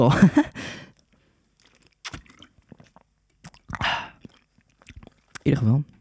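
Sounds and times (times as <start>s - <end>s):
speech: 0.0s - 0.8s, 5.5s - 5.9s
person sipping and swallowing water: 0.9s - 5.6s.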